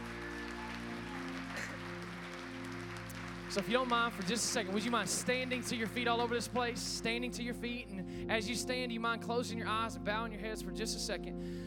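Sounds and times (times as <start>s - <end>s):
church audience applauding: 0.0s - 7.0s
sustained keyboard chords: 0.0s - 11.6s
speech: 3.5s - 11.6s.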